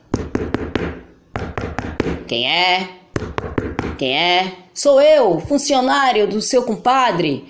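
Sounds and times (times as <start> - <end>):
knocking on a door: 0.1 - 2.3, 3.2 - 4.0
speech: 2.3 - 3.0, 4.0 - 7.4.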